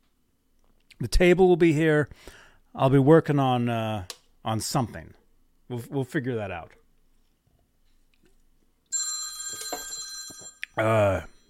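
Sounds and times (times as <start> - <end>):
speech: 1.0 - 6.8, 10.8 - 11.3
telephone ringing with a bright steady trilling tone: 8.9 - 10.7.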